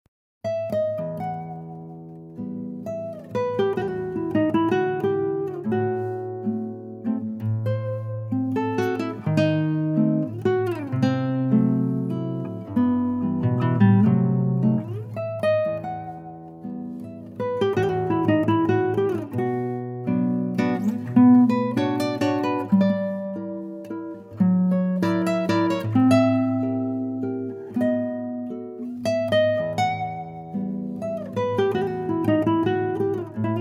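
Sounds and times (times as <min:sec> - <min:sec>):
guitar funeral music: 0:00.4 - 0:33.5.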